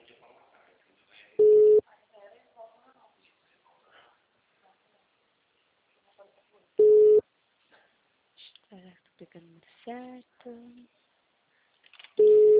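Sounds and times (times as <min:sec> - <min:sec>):
unanswered telephone call ringing back to the caller: 0:06.8 - 0:07.2, 0:12.2 - 0:12.5
speech: 0:09.2 - 0:11.0.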